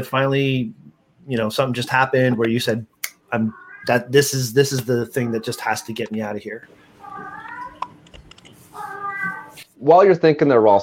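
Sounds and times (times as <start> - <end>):
speech: 0.0 - 7.3, 9.8 - 10.8
deaf cat wailing meows in a hallway: 3.5 - 4.1, 7.0 - 8.0, 8.7 - 9.7
sharp keyboard-like clicks: 7.7 - 8.6.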